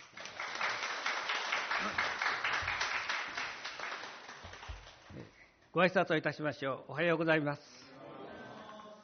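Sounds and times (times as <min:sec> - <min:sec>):
church audience applauding to welcome a guest preacher: 0:00.0 - 0:05.2
speech: 0:05.8 - 0:07.7.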